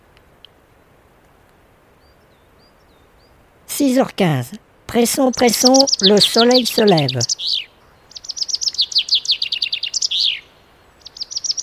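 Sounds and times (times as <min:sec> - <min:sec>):
steady hiss: 0:00.0 - 0:11.6
European robin singing: 0:02.0 - 0:03.4, 0:04.9 - 0:11.6
speech: 0:03.8 - 0:07.7.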